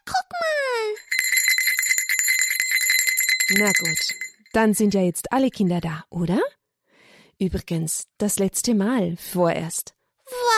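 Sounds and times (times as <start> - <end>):
bell ringing loudly and rapidly: 0.9 - 4.6
speech: 3.5 - 6.6, 7.4 - 10.0.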